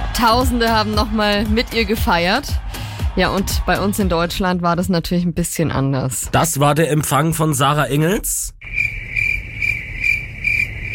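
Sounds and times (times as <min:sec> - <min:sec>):
speech: 0:00.2 - 0:09.0
crickets chirping: 0:08.6 - 0:10.9.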